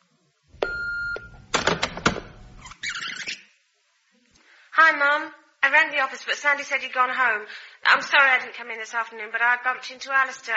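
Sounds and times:
answering machine steady electronic beep: 0:00.6 - 0:02.6
sharp mechanical clicks and clunks of answering machine tape mechanism: 0:00.6 - 0:02.6
speech: 0:04.9 - 0:10.5.

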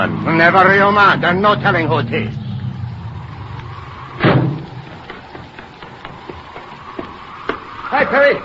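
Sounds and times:
speech: 0:00.0 - 0:02.4, 0:07.9 - 0:08.4
car door slamming shut: 0:04.2 - 0:04.8.

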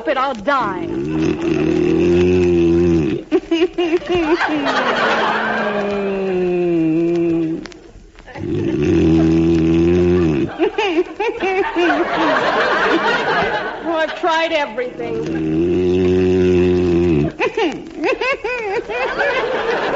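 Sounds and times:
speech: 0:00.0 - 0:02.6, 0:03.8 - 0:06.2, 0:14.0 - 0:16.6, 0:17.6 - 0:19.9
wobbly warbling vocal noises: 0:00.0 - 0:19.9
man snoring loudly with growling raspy buzz: 0:00.8 - 0:03.3, 0:08.4 - 0:10.5, 0:15.1 - 0:17.4
laughter: 0:03.2 - 0:07.6, 0:10.1 - 0:19.9.

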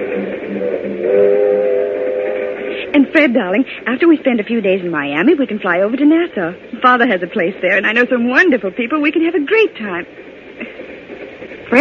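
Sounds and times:
train whistle: 0:00.0 - 0:03.0
train travelling to Miami rumbling: 0:00.0 - 0:11.7
speech: 0:03.0 - 0:10.8.

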